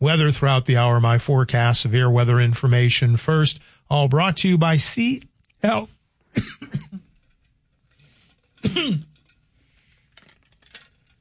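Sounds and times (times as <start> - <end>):
speech: 0.0 - 6.8, 8.6 - 9.1
person clearing a dry throat: 6.3 - 7.1, 8.6 - 9.2.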